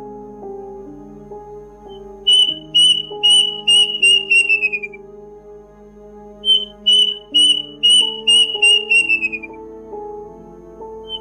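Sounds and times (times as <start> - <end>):
plaintive cuckoo call played from a recording: 1.9 - 5.0, 6.4 - 9.6
droning background of sustained tones: 2.2 - 5.0, 6.5 - 9.5.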